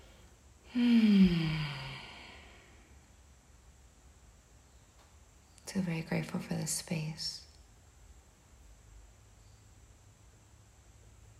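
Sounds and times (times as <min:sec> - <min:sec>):
speech: 0:00.7 - 0:01.6, 0:05.7 - 0:07.5
deep breath exhale during a morning prayer: 0:00.7 - 0:02.9.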